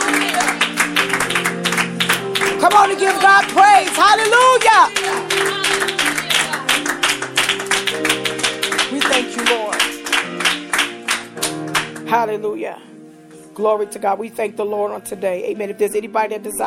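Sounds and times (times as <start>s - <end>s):
congregation clapping hands in a steady rhythmic beat: 0.0s - 12.2s
sustained organ-like music: 0.0s - 13.4s
speech: 2.9s - 5.9s, 12.1s - 12.9s, 13.6s - 16.6s.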